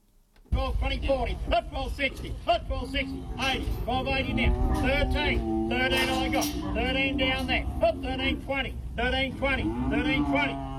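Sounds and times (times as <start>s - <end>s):
steady rumble: 0.2s - 9.6s
cattle mooing at a livestock sale: 2.9s - 8.4s, 9.4s - 10.7s.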